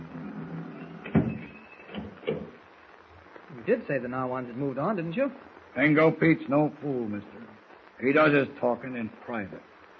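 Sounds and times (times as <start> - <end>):
door swinging shut with a solid thud: 1.0 - 2.6
speech: 3.7 - 7.4, 8.0 - 9.7.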